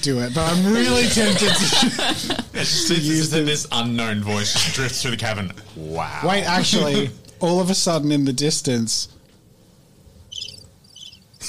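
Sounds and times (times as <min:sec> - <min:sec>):
speech: 0:00.0 - 0:09.2
laughter: 0:00.3 - 0:03.3
high buzzing cricket chirps: 0:10.3 - 0:11.4.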